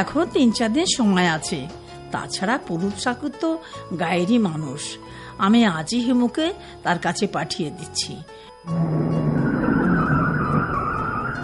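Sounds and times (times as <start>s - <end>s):
speech: 0.0s - 9.3s
car pulling up outside with steady engine drone: 8.7s - 11.4s
high squealing tone from tyres or brakes: 8.7s - 11.4s.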